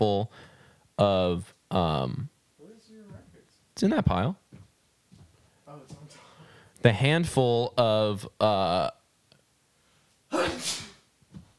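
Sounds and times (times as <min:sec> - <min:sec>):
speech: 0:01.0 - 0:02.3, 0:03.8 - 0:04.4, 0:06.8 - 0:09.0, 0:10.3 - 0:10.9
person sneezing: 0:10.3 - 0:11.1.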